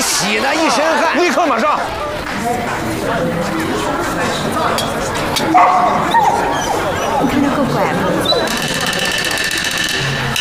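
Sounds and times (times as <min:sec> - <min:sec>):
people chattering at a meeting: 0:00.0 - 0:10.3
speech: 0:00.2 - 0:08.7
laughter: 0:00.7 - 0:10.1
dog barking and whimpering: 0:05.4 - 0:09.4.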